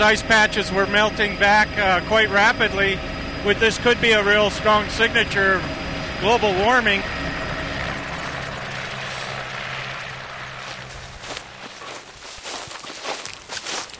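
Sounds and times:
speech: 0:00.0 - 0:07.2
helicopter landing with rotor wash and engine roar: 0:00.0 - 0:13.9
crunching footsteps over rough ground: 0:07.9 - 0:13.9.

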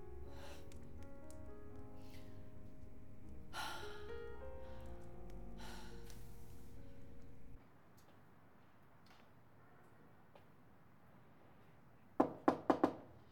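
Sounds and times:
brief breathy sound: 0:00.2 - 0:07.5
quick sharp knocks on a door: 0:12.2 - 0:13.1.

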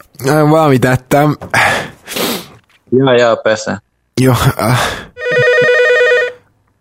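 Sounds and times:
speech: 0:00.0 - 0:02.2, 0:02.9 - 0:05.4
telephone with trilling electronic ring: 0:05.2 - 0:06.5.

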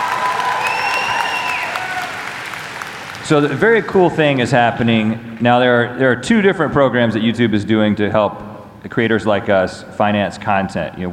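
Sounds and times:
crowd applauding and cheering: 0:00.0 - 0:04.4
bright whistles: 0:00.5 - 0:01.9
speech: 0:03.3 - 0:11.1.

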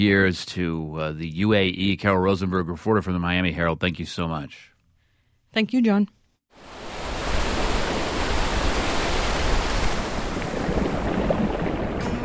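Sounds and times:
speech: 0:00.0 - 0:04.7, 0:05.5 - 0:06.8
ocean surf roaring: 0:06.6 - 0:12.2.

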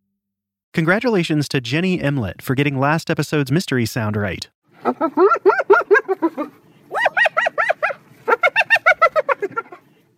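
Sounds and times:
speech: 0:00.8 - 0:06.6
spotted hyena giggling: 0:04.8 - 0:10.0.

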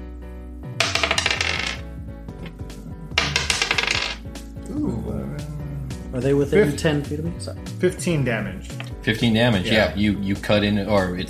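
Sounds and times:
two ten-sided dice rolling during a tabletop role-playing game: 0:00.8 - 0:02.6, 0:03.2 - 0:04.2
speech: 0:06.2 - 0:11.2.

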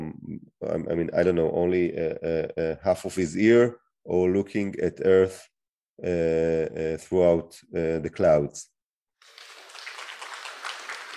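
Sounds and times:
speech: 0:00.6 - 0:08.7
audience applause: 0:09.3 - 0:11.1.

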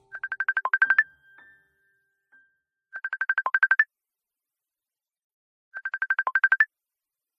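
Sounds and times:
mobile phone ringtone of bright electronic beeps: 0:00.0 - 0:02.0, 0:03.0 - 0:03.8, 0:05.8 - 0:06.7.

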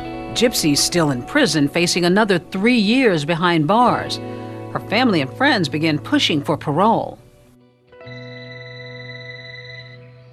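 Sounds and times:
speech: 0:00.4 - 0:07.2
telephone ringing with a steady electronic tone: 0:08.0 - 0:10.3.

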